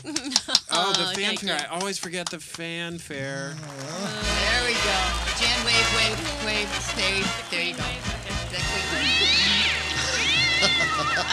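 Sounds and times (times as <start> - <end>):
speech: 0.0 - 9.8, 10.6 - 11.3
laughter: 0.0 - 11.3
cat meowing loudly: 8.8 - 11.3.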